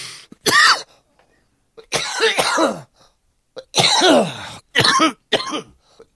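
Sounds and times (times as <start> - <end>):
person with congested lungs and asthma coughing harshly: 0.4 - 0.9, 1.8 - 2.9, 3.6 - 6.1.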